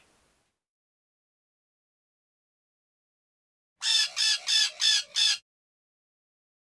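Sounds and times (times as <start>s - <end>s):
bird calls: 3.8s - 5.4s
harsh buzzy bird squawks: 3.8s - 5.4s.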